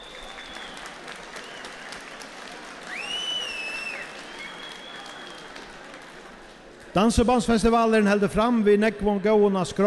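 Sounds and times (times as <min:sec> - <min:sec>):
audience applause: 0:00.0 - 0:07.0
speech: 0:06.9 - 0:09.8.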